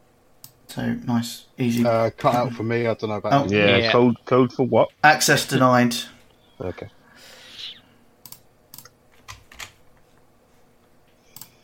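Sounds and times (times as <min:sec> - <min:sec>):
speech: 0:00.8 - 0:07.3
typing on a computer keyboard: 0:08.2 - 0:09.8.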